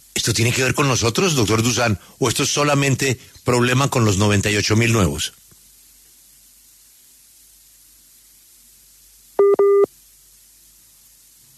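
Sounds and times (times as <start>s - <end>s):
speech: 0.2s - 5.4s
incoming call tone beeps on a phone line: 9.4s - 9.9s.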